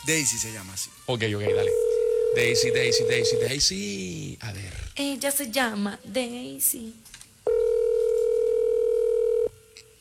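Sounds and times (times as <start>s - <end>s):
speech: 0.0s - 7.6s
ringback tone of an unanswered outgoing telephone call: 1.5s - 3.6s, 7.5s - 9.6s.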